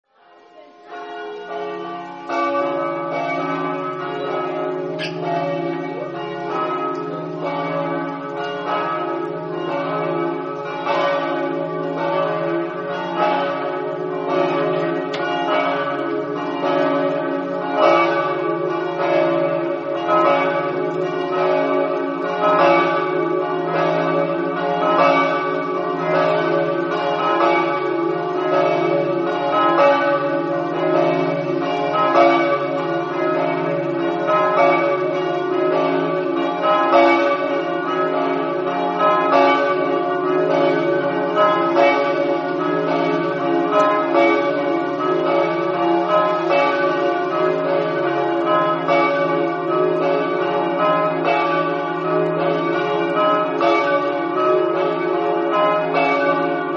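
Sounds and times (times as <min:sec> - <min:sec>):
bells: 0:00.1 - 0:56.7.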